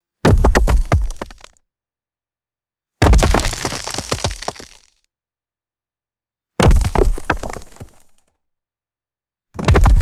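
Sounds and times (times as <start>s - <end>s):
heavy rocks dropping on dirt: 0.3s - 1.5s, 3.0s - 4.9s, 6.6s - 8.1s, 9.6s - 10.0s.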